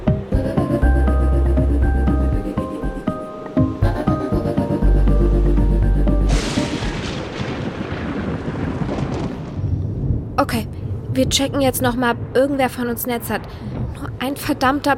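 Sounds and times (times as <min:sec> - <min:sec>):
steady tonal hum: 0:00.0 - 0:06.4
thunder during a storm outside: 0:06.3 - 0:14.9
speech: 0:10.5 - 0:14.9.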